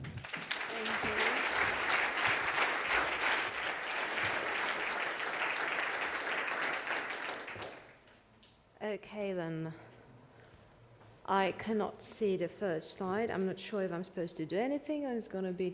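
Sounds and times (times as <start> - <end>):
audience applause: 0.0 - 8.0
speech: 9.0 - 9.9, 11.3 - 15.7.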